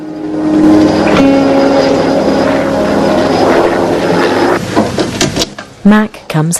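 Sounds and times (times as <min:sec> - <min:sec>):
helicopter engine drone with humming tonal whine: 0:00.0 - 0:04.7
speech: 0:05.8 - 0:06.5.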